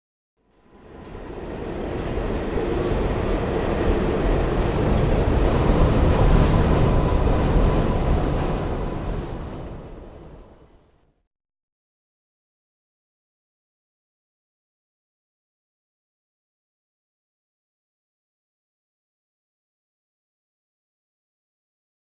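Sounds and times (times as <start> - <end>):
subway train moving: 0.5 - 11.0.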